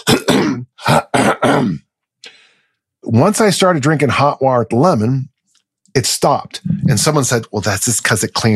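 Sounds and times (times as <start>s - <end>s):
person imitating throat clearing at the movies: 0.0s - 1.9s
speech: 3.1s - 5.3s, 6.0s - 8.5s.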